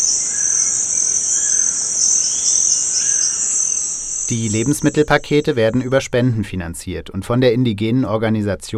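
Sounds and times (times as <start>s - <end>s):
faint brief bird calls in the Amazon rainforest: 0.0s - 5.9s
rainforest insects buzzing and trilling: 0.0s - 6.0s
speech: 4.3s - 8.7s.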